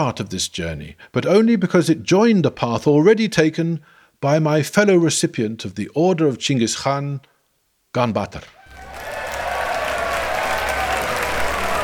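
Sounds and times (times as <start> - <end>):
speech: 0.0 - 7.3, 7.9 - 8.9
large audience in a chamber applauding after a speech: 8.6 - 11.8
faint crowd murmur: 8.7 - 11.8.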